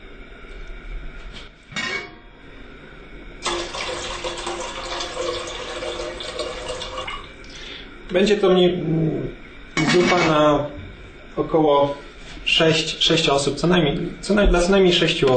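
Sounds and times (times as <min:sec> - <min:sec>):
tap water filling a pot for beetroot borscht: 0:03.4 - 0:07.4
speech: 0:08.1 - 0:10.8, 0:11.4 - 0:15.3.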